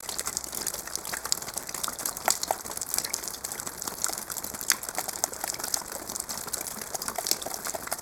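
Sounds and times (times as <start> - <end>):
water dripping: 0.0 - 7.9.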